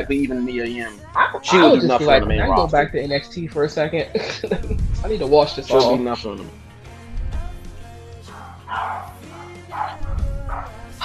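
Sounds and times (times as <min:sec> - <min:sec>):
laughter: 0:00.0 - 0:06.4
speech: 0:00.0 - 0:06.6
dog barking: 0:01.1 - 0:02.0, 0:08.3 - 0:11.0.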